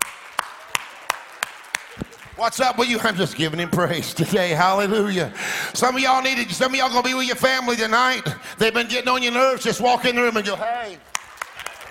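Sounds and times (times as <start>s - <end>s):
sharp hand claps: 0.0s - 2.4s, 11.1s - 11.8s
speech: 2.4s - 11.1s.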